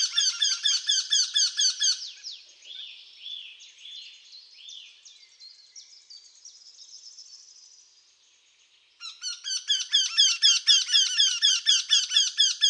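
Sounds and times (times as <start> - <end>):
Eurasian wryneck calling: 0.0 - 2.3, 9.0 - 12.6.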